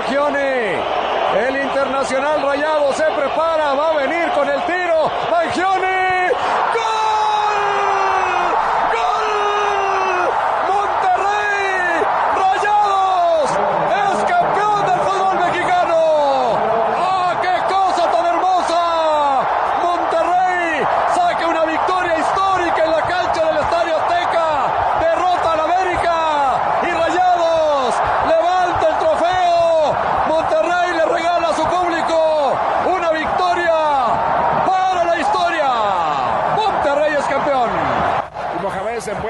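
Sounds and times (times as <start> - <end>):
huge stadium crowd whistling at penalty taker: 0.0 - 39.1.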